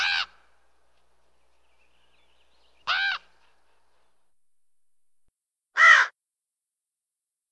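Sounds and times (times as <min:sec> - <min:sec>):
raven cawing: 0:00.0 - 0:00.7, 0:02.8 - 0:03.6, 0:05.8 - 0:06.2
other birds: 0:00.0 - 0:04.2.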